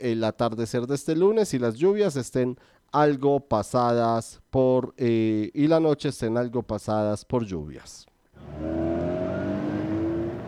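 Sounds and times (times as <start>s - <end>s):
speech: 0.0s - 8.8s
car engine revving: 8.4s - 10.4s.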